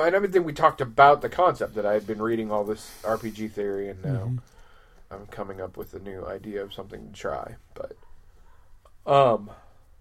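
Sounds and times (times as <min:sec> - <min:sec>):
speech: 0:00.0 - 0:08.1, 0:09.0 - 0:09.6
person yawning: 0:04.0 - 0:04.4.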